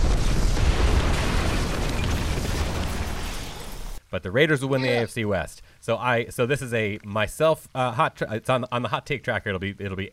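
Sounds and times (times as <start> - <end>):
explosion sound effect: 0.0 - 4.0
speech: 4.1 - 10.1.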